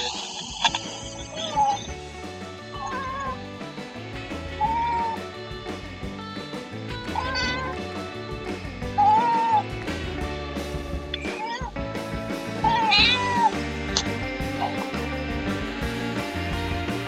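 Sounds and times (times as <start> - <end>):
music: 0.0 - 17.0
cat meowing: 2.8 - 3.4, 4.6 - 5.2, 7.2 - 7.8, 9.0 - 9.6, 12.6 - 13.5.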